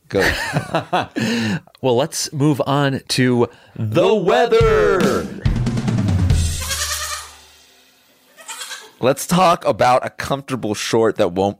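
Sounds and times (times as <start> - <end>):
speech: 0.1 - 5.4, 9.0 - 11.5
laughter: 0.2 - 1.6
goat bleating with a wavering quavering tone: 6.5 - 7.4, 8.3 - 9.0.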